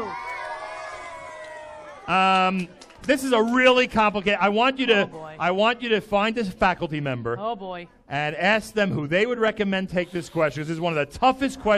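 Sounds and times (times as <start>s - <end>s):
crowd cheering and shouting in a frenzy: 0.0s - 2.6s
speech: 2.1s - 11.7s.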